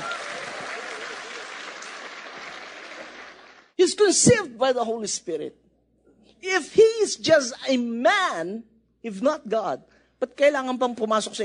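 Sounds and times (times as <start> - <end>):
audience applause: 0.0 - 3.8
speech: 3.8 - 5.6, 6.5 - 11.4.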